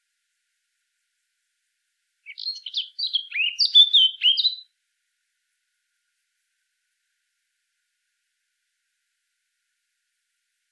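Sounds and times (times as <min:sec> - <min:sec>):
Eurasian blackcap Sylvia atricapilla song with twittering and fluted whistles: 0:02.3 - 0:04.6.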